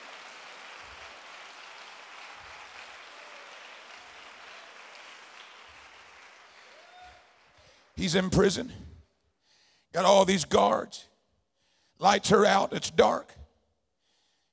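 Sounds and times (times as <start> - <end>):
large crowd clapping hands in applause: 0.0 - 8.2
speech: 8.0 - 8.9, 10.0 - 11.1, 12.0 - 13.4.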